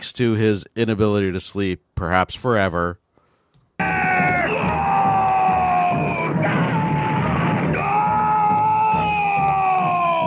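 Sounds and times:
speech: 0:00.0 - 0:03.0
cartoon character long guttural scream: 0:03.8 - 0:10.2.

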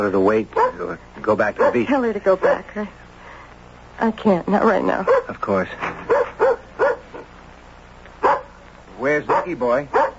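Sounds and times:
speech: 0:00.0 - 0:03.0, 0:04.0 - 0:06.1, 0:09.0 - 0:10.0
dog barking: 0:00.5 - 0:00.9, 0:01.5 - 0:02.7, 0:05.0 - 0:05.4, 0:06.0 - 0:07.3, 0:08.2 - 0:08.6, 0:09.2 - 0:10.1.

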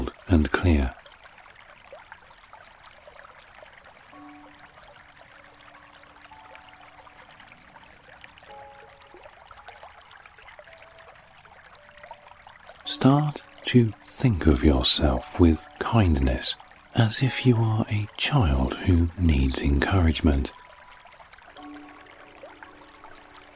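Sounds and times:
flowing stream water: 0:00.0 - 0:23.5
speech: 0:00.3 - 0:01.0, 0:13.0 - 0:20.6.

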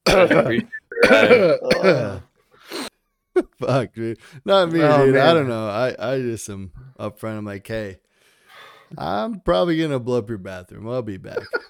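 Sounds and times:
person mimicking a coughing fit: 0:00.0 - 0:02.2
speech: 0:00.1 - 0:02.3, 0:03.4 - 0:08.0, 0:08.9 - 0:11.6
short breathy wheeze: 0:08.2 - 0:08.9.

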